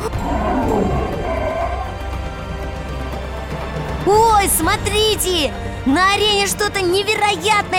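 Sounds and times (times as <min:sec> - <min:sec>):
lions and tigers roaring in an arena: 0:00.0 - 0:02.7
speech: 0:04.1 - 0:07.7.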